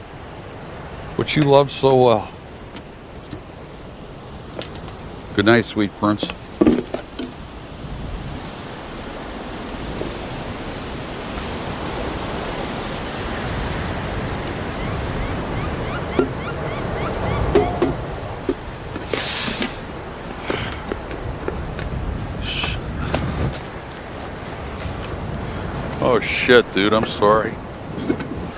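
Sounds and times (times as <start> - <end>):
surf washing: 0.0 - 28.5
wind gusting on a seashore: 0.0 - 28.5
speech: 1.2 - 2.4, 5.4 - 6.4, 26.5 - 27.6.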